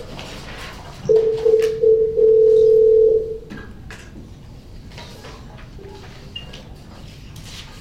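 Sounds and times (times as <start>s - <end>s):
telephone dial tone while calling someone back: 1.1s - 3.3s.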